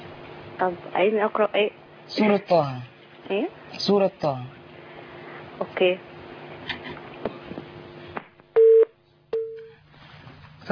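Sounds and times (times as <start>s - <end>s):
speech: 0.6s - 4.6s, 5.6s - 6.1s
busy tone beeps on a phone line after a call was cut off: 8.6s - 9.7s.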